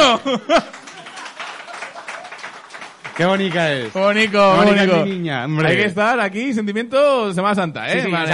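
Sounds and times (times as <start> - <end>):
laughter: 0.0 - 5.2
crowd applauding: 0.0 - 5.9
speech: 0.1 - 0.8, 3.2 - 8.3.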